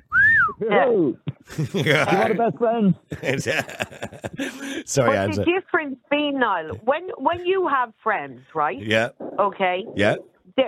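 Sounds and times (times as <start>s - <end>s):
person whistling a short bright rising and falling note: 0.0s - 0.6s
speech: 0.6s - 10.6s
laughter: 1.4s - 5.4s, 8.8s - 9.1s.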